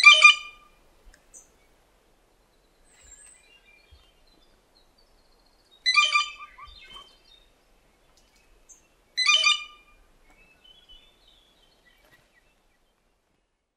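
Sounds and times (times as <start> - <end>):
blue jay giving harsh raspy calls: 5.8 - 7.1, 9.2 - 9.9.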